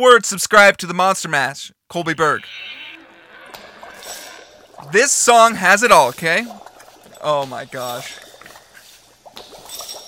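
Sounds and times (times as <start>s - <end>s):
speech: 0.0s - 2.8s, 4.8s - 6.6s, 7.2s - 8.2s
bubbling liquid: 2.5s - 10.0s.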